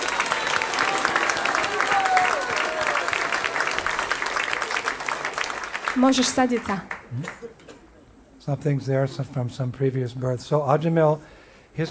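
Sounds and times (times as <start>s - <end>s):
audience applause: 0.0s - 7.4s
speech: 6.0s - 7.6s, 8.4s - 11.9s.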